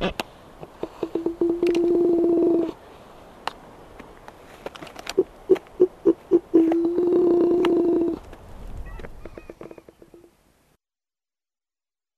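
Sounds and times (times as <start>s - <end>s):
Black-browed albatross calling: 0.0s - 2.8s, 5.1s - 8.2s, 8.8s - 10.3s.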